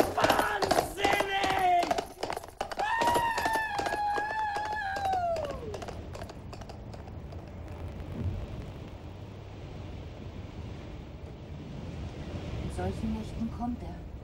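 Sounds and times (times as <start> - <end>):
wind and rain in a storm at night: 0.0 - 14.2
high whistling howl of storm wind: 2.8 - 5.9
speech: 12.9 - 14.1.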